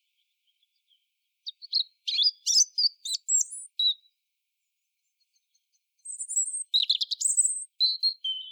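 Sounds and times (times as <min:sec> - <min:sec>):
European robin Erithacus rubecula singing: 0:00.0 - 0:04.2, 0:05.0 - 0:08.4.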